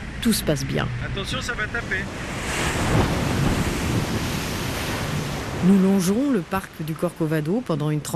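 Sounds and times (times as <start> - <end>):
speech: 0.2 - 3.2, 5.6 - 8.1
loud ocean surf breaking on a beach: 0.9 - 8.1
gusty wind buffeting the microphone: 2.0 - 6.2.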